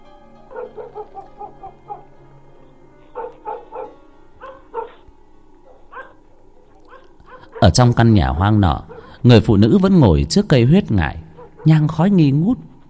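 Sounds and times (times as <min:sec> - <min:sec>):
German shepherd dogs barking outside: 0:00.5 - 0:02.2, 0:03.1 - 0:09.2, 0:11.2 - 0:11.9
speech: 0:07.6 - 0:12.7.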